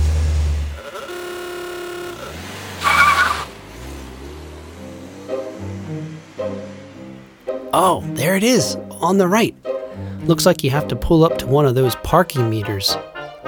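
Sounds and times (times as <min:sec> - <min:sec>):
car engine revving: 0:00.0 - 0:07.7
tire screech: 0:00.0 - 0:07.7
speech: 0:07.8 - 0:13.4.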